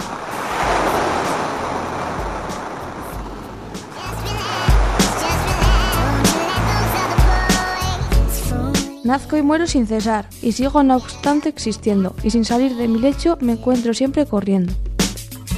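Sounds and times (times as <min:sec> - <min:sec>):
sea waves rolling and breaking: 0:00.0 - 0:08.9
speech: 0:09.1 - 0:14.9.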